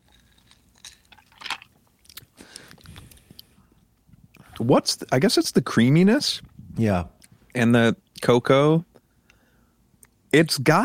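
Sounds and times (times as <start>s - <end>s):
wet slurping and swallowing of a creamy cocktail on ice: 0.0s - 4.7s
speech: 4.6s - 8.9s, 10.3s - 10.8s.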